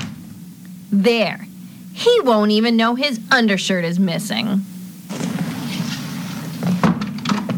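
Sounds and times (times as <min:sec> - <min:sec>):
speech: 0:00.9 - 0:04.7
wooden dresser underwear drawer sliding shut: 0:05.1 - 0:07.5.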